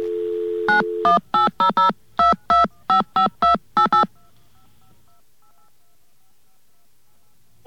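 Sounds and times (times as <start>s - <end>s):
touch-tone beeps dialing a 1-800 number: 0.7s - 5.7s.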